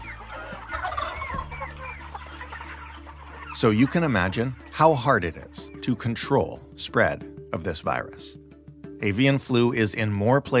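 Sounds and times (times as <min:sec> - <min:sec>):
many chickens clucking and squawking on a commercial chicken farm: 0:00.0 - 0:04.8
speech: 0:03.6 - 0:08.4, 0:09.0 - 0:10.5.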